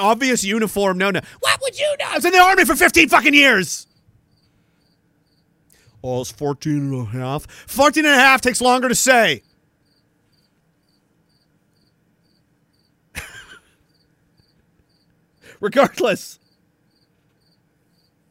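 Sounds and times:
speech: 0.0s - 3.9s, 6.0s - 9.5s, 15.6s - 16.4s
cricket chirping: 3.8s - 5.6s, 9.4s - 15.5s, 16.4s - 18.2s.

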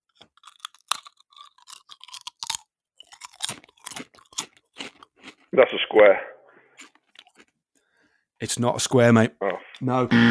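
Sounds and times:
crunching of a Tesco-made flavoured snack close to the microphone: 0.0s - 5.5s, 6.8s - 7.6s
speech: 5.6s - 6.4s, 8.4s - 10.2s.

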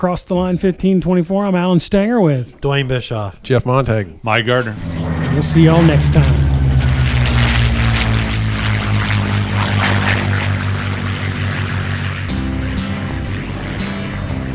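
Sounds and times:
speech: 0.0s - 6.4s
propeller airplane engine droning: 1.8s - 14.5s
whooshing wind noise: 4.2s - 9.2s.

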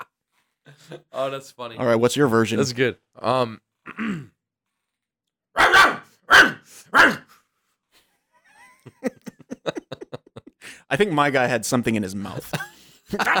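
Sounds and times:
speech: 0.8s - 4.3s, 6.8s - 7.2s, 10.9s - 13.3s
dog yipping and snorting: 5.6s - 7.2s
dog barking: 5.6s - 7.4s
laughter: 8.4s - 10.8s, 12.2s - 13.3s.

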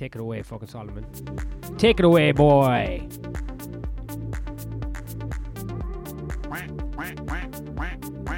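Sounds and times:
speech: 0.0s - 3.4s, 6.5s - 8.3s
soundboard duck quack sound effects: 6.4s - 8.3s.

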